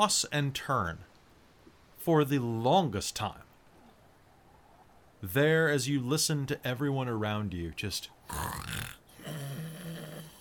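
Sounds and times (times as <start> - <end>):
speech: 0.0 - 1.1, 2.0 - 3.5, 5.2 - 9.0
person imitating snoring with the voice: 8.3 - 10.3.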